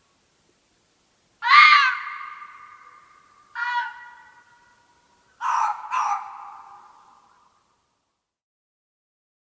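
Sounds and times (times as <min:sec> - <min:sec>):
red fox calling with hoarse screams: 0:01.4 - 0:03.0, 0:03.6 - 0:04.4, 0:05.4 - 0:07.0.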